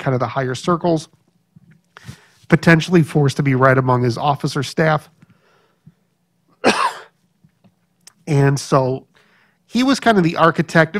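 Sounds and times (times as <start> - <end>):
speech: 0.0 - 1.2, 2.0 - 5.2, 8.3 - 9.1, 9.7 - 10.9
throat clearing from something caught in the throat: 6.6 - 7.2.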